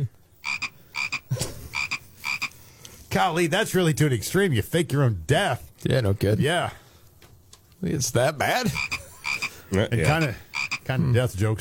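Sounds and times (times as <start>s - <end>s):
frog croaking: 0.4s - 2.6s, 8.7s - 10.9s
speech: 3.1s - 6.8s, 7.8s - 8.9s, 9.7s - 11.5s.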